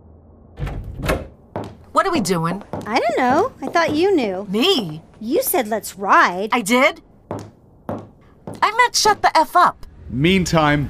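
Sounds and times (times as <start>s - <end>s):
front door slamming shut: 0.6s - 1.4s
speech: 2.0s - 7.1s, 8.8s - 10.8s.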